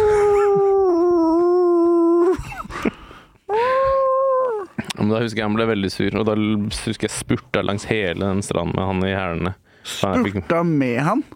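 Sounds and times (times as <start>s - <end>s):
person imitating a wolf howl: 0.0s - 2.4s, 3.5s - 4.7s
speech: 5.0s - 11.3s.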